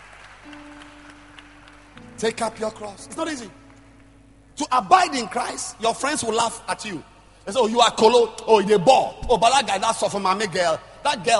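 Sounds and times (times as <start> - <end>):
crowd clapping: 0.0 - 4.2
speech: 2.2 - 3.6, 4.6 - 11.3.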